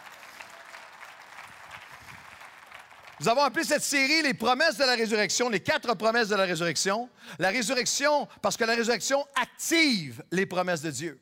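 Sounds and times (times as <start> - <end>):
audience applause at a sermon on the resurrection: 0.0 - 3.4
speech: 3.2 - 11.2.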